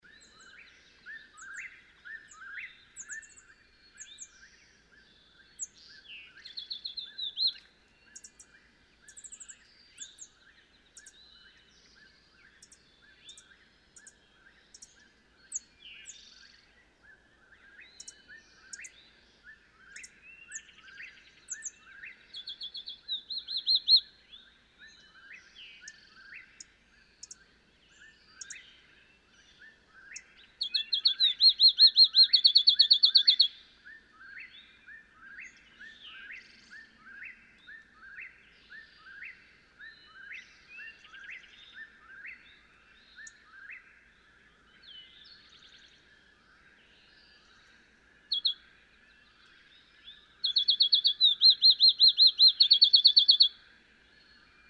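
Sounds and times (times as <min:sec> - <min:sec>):
field sparrow: 0:00.0 - 0:54.6.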